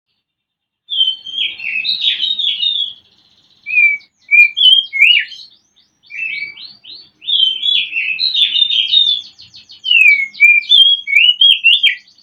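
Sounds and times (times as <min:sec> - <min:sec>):
oriental magpie-robin singing whistled phrases: 0:00.9 - 0:12.2.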